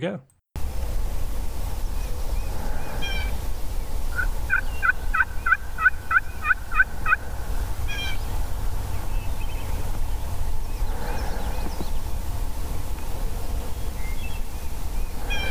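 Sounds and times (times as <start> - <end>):
speech: 0.0 - 0.4
constant low roar of road traffic: 0.6 - 15.4
thin bird chirps: 1.6 - 15.4
wild turkey gobbling: 4.1 - 7.3.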